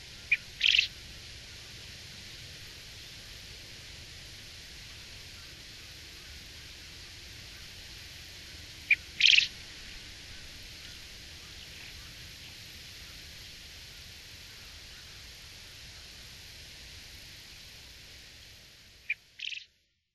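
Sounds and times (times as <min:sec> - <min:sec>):
Japanese quail calling: 0:00.2 - 0:01.0, 0:08.9 - 0:09.6, 0:19.1 - 0:19.6.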